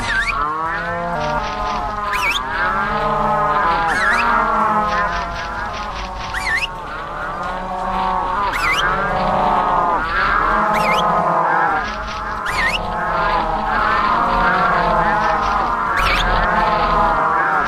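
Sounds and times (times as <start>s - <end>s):
rising squeaky cries: 0.0s - 4.4s, 6.3s - 6.7s, 8.0s - 9.1s, 10.2s - 11.3s, 12.4s - 13.1s
cows mooing: 0.0s - 17.6s
steady low rumble: 0.0s - 17.6s.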